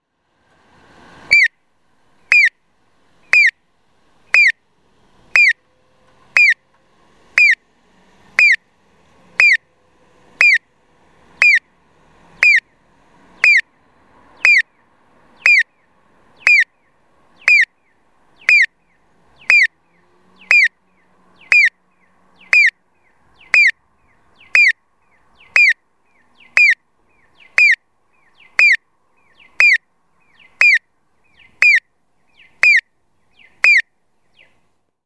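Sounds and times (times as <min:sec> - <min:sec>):
audible pedestrian crossing signal chirping at an intersection in Moriyama, Aichi: 0:01.2 - 0:01.6, 0:02.3 - 0:02.6, 0:03.2 - 0:03.7, 0:04.3 - 0:05.7, 0:06.3 - 0:07.7, 0:08.3 - 0:08.7, 0:09.3 - 0:09.7, 0:10.3 - 0:13.7, 0:14.3 - 0:14.8, 0:15.4 - 0:24.8, 0:25.4 - 0:33.9.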